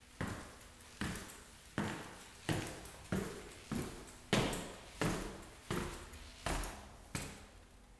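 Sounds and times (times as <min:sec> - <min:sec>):
footsteps going down stairs: 0:00.0 - 0:07.4.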